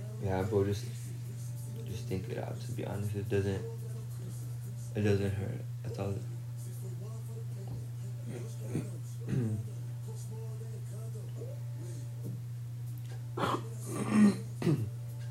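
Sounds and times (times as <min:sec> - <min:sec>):
steady low electrical hum: 0:00.0 - 0:15.2
speech: 0:00.2 - 0:01.1, 0:01.9 - 0:03.8, 0:05.0 - 0:06.3
person clearing throat: 0:08.3 - 0:09.6, 0:13.4 - 0:14.9.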